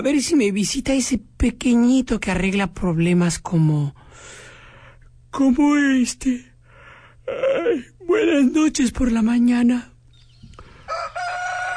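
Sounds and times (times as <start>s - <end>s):
speech: 0.0s - 4.4s, 5.3s - 6.5s, 7.3s - 9.9s
rooster crowing: 10.7s - 11.7s.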